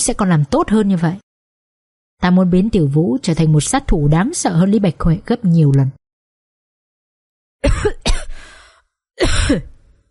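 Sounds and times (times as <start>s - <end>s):
speech: 0.0s - 1.2s, 2.2s - 6.0s, 9.2s - 9.7s
person coughing after nearly choking on saliva: 7.6s - 8.4s, 9.2s - 9.8s.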